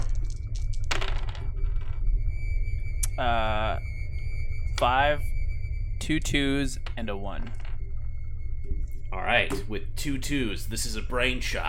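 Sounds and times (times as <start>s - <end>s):
four dice clattering onto a hard surface: 0.0s - 2.0s
low steady hum: 0.0s - 11.6s
speech: 3.2s - 3.6s, 4.8s - 5.4s, 6.1s - 7.6s, 9.1s - 11.6s.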